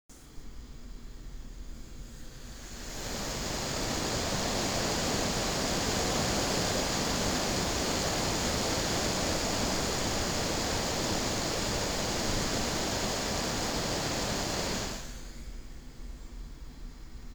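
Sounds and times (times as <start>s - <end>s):
dual phase fan running: 0.2s - 17.3s.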